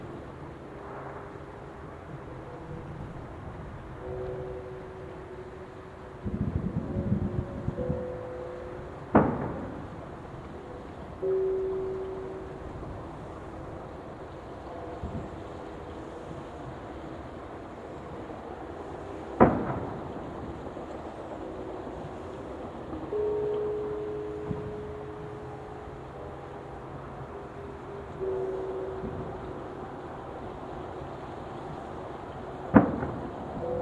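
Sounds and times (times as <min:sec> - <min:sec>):
low steady rumble of traffic in Japan: 0:00.0 - 0:33.8
temple bells on New Year's Eve in Japan: 0:04.0 - 0:17.0, 0:23.0 - 0:33.8
neighbor's firecracker popping on New Year's Eve in Japan: 0:09.1 - 0:10.2, 0:19.4 - 0:23.1, 0:32.7 - 0:33.8
fireworks cracking at midnight on New Year's Eve in Japan: 0:19.4 - 0:23.1, 0:32.7 - 0:33.8.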